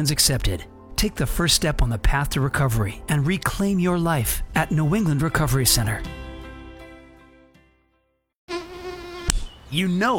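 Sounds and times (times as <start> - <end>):
speech: 0.0 - 6.2, 9.7 - 10.1
mosquito buzzing: 8.5 - 9.6.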